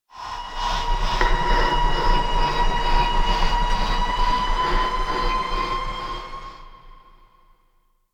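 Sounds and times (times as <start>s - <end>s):
asteroid howls ambience: 0.2s - 7.5s.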